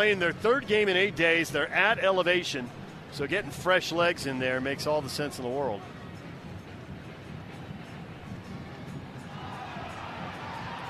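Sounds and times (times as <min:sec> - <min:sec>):
speech: 0:00.0 - 0:06.0
large stadium crowd booing: 0:09.3 - 0:10.8.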